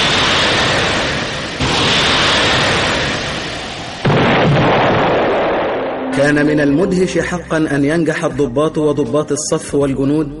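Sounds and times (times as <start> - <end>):
artillery fire in a radio drama battle scene: 0.0 - 6.0
speech: 6.2 - 10.3.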